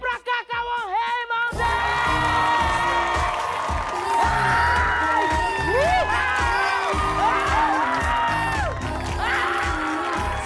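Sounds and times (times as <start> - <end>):
loud crowd shouting and cheering with whoops: 0.0 - 10.4.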